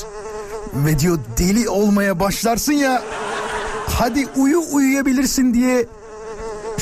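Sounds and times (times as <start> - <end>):
person imitating a mosquito buzzing: 0.0 - 2.0, 3.4 - 6.8
speech: 0.7 - 3.2, 4.0 - 6.0
laughter: 2.7 - 5.7.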